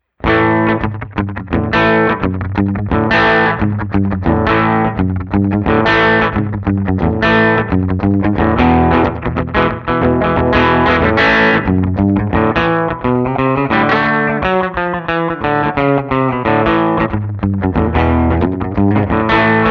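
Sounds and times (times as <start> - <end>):
Westerly-made Guild Starfire III electric guitar playing rockabilly: 0.0 - 19.6.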